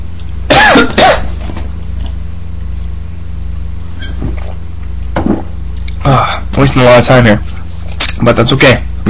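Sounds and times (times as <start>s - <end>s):
low steady hum: 0.0s - 9.0s
soft throat clearing: 0.5s - 1.3s
loud harsh coughs: 0.5s - 1.4s
speech: 6.0s - 7.5s, 8.2s - 9.0s.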